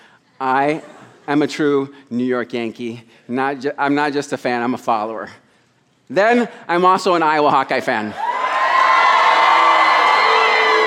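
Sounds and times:
speech: 0.4 - 5.4, 6.1 - 8.3
loud live audience cheering and whooping: 8.2 - 10.8.

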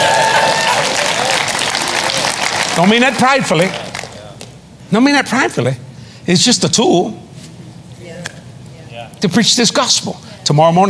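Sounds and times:
crowd clapping loudly: 0.0 - 4.3
speech: 2.8 - 3.8, 4.9 - 7.2, 9.2 - 10.8.

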